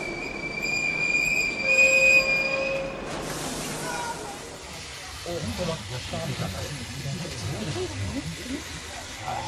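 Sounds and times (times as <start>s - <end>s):
train wheels squealing to a stop: 0.0s - 3.2s
railcars rolling along the track with rumbling clatter: 0.0s - 9.4s
faint voices: 3.6s - 9.4s.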